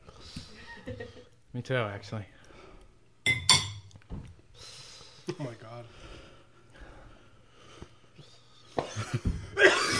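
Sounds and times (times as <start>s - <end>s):
speech: 0.9s - 2.4s, 5.4s - 6.1s
sharp breathy coughs: 8.8s - 9.9s.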